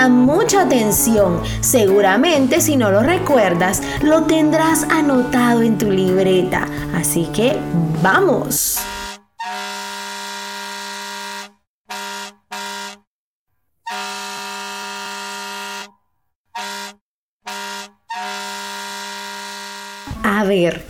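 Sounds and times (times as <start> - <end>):
speech: 0.0 - 9.0, 20.5 - 20.8
truck air horn blasts: 8.8 - 13.1, 13.8 - 20.2.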